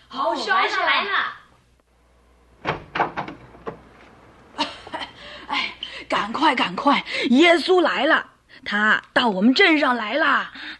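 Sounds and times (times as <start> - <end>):
speech: 0.1 - 1.4, 6.3 - 10.7
wooden clunks of a door being opened: 2.6 - 4.4
door latch rattles: 2.6 - 4.5
door scraping as it swings open: 2.6 - 5.4
laughter: 4.5 - 5.8.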